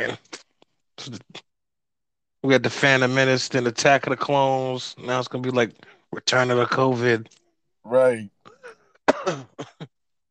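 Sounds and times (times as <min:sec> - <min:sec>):
speech: 0:01.0 - 0:01.4, 0:02.4 - 0:08.4, 0:09.2 - 0:09.9
person coughing with a throat-clearing quality: 0:08.5 - 0:09.9.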